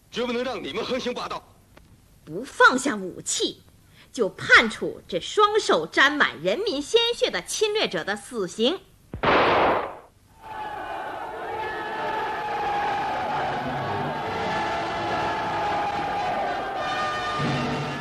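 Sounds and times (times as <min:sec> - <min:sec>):
speech: 0:00.2 - 0:01.6, 0:02.3 - 0:08.9
crowd cheering celebrating a guerrilla unit's battle victory: 0:10.4 - 0:17.9.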